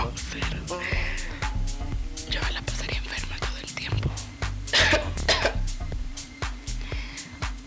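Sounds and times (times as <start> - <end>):
low hum: 0.0 - 7.3
ill person clearing throat: 4.7 - 5.7
ill person coughing: 4.7 - 5.7.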